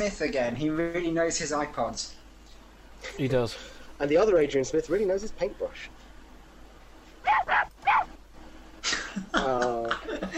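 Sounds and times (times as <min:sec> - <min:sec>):
speech: 0:00.0 - 0:02.2, 0:03.0 - 0:06.0, 0:09.2 - 0:10.3
dog barking: 0:07.2 - 0:08.2.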